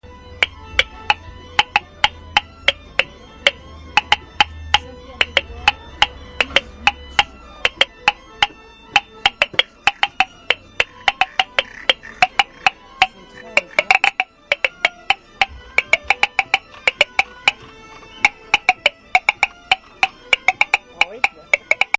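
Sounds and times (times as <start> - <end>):
hurdy-gurdy: 0.0 - 21.9
frog: 9.9 - 14.6.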